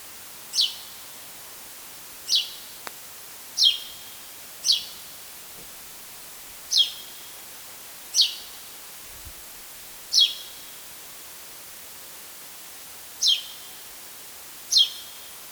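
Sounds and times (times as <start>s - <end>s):
steady background hiss: 0.0s - 15.4s
Spanish sparrow calls: 2.3s - 2.6s, 4.6s - 5.0s, 6.7s - 7.2s, 8.1s - 8.5s, 10.1s - 10.5s.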